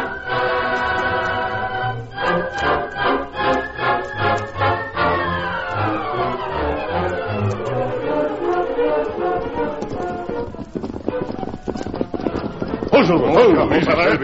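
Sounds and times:
dramatic orchestral music: 0:00.0 - 0:11.2
thundering horse hoofbeats galloping: 0:00.0 - 0:14.2.

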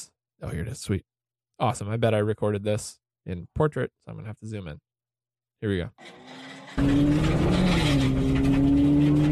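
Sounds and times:
speech: 0:00.0 - 0:04.9, 0:05.6 - 0:07.7
rally car engine droning: 0:06.0 - 0:09.3.

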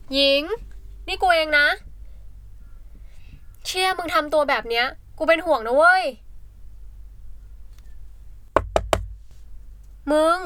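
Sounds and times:
low hum: 0:00.0 - 0:10.4
speech: 0:00.1 - 0:01.9, 0:03.6 - 0:06.2, 0:10.1 - 0:10.4
firm knocks on a dormitory door: 0:08.6 - 0:09.3.

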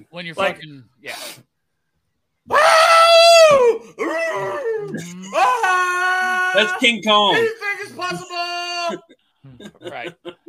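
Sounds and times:
speech: 0:00.0 - 0:01.5, 0:02.5 - 0:10.4
man letting out a warbling Tarzan-style yell: 0:02.5 - 0:09.1
laughter: 0:07.4 - 0:10.4.

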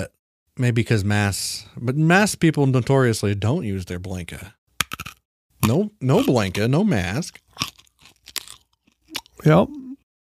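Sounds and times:
speech: 0:00.0 - 0:07.7, 0:09.4 - 0:09.9
person making a short voiced sound: 0:05.6 - 0:07.3, 0:09.1 - 0:10.0
crunchy chewing: 0:07.2 - 0:09.4.

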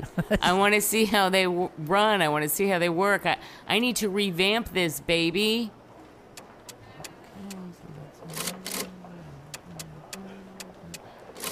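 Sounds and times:
speech: 0:00.0 - 0:05.8
low voice humming: 0:06.8 - 0:11.5
vintage adding machine tape printing: 0:08.2 - 0:11.5.

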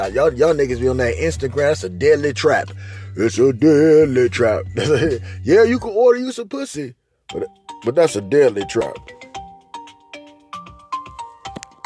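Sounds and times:
speech: 0:00.0 - 0:09.2
phone ringtone playing a bright electronic melody: 0:07.3 - 0:11.8.

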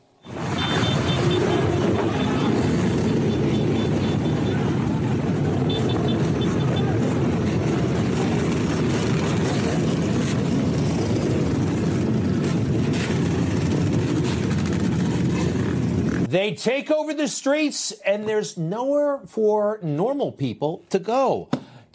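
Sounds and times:
many motorbike engines roaring through city streets: 0:00.2 - 0:16.3
speech: 0:16.4 - 0:21.6.

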